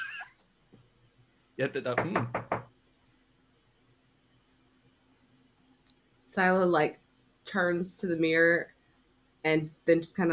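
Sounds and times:
high-pitched cry: 0.0 - 0.3
speech: 1.6 - 2.5, 6.4 - 8.8, 9.4 - 10.3
knocking on a door: 1.9 - 2.7.

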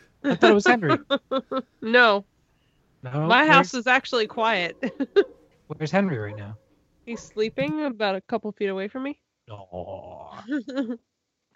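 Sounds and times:
laughter: 0.2 - 1.8, 3.5 - 6.5
speech: 0.2 - 2.3, 3.0 - 11.1
dogs barking outside at night: 3.5 - 7.5
dogs growling outside at night: 4.3 - 7.4.

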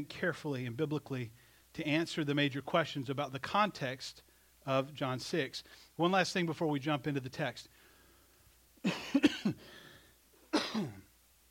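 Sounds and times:
speech: 0.0 - 7.8, 8.8 - 9.8
throat clearing: 8.8 - 9.7, 10.5 - 11.1
person coughing roughly: 8.8 - 9.8, 10.5 - 11.1.

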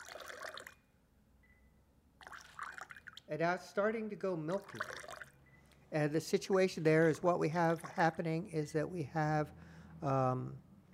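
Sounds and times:
water trickling into a glass: 0.0 - 0.8, 2.2 - 3.3, 4.5 - 5.4
speech: 3.3 - 5.1, 5.9 - 10.6.

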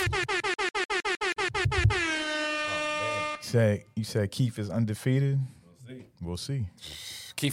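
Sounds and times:
loud air horn blasts: 0.0 - 3.6
speech: 3.5 - 7.5.

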